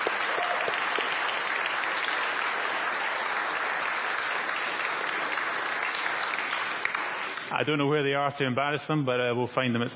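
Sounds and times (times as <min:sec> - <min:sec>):
congregation applauding: 0:00.0 - 0:07.7
speech: 0:07.5 - 0:09.9.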